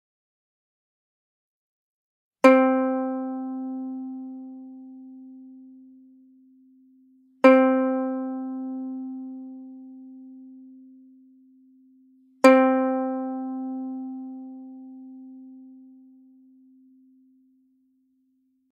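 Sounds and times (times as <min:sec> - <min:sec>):
ukulele C string plucked: 0:02.4 - 0:06.1, 0:07.4 - 0:11.2, 0:12.4 - 0:16.4.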